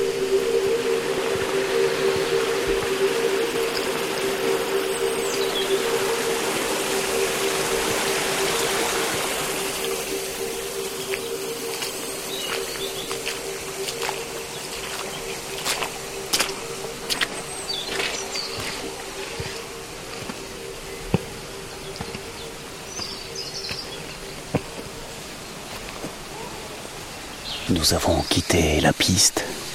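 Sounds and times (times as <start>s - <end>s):
steady droning hum: 0.0s - 25.7s
small stream burbling: 0.0s - 29.7s
speech: 27.8s - 29.6s.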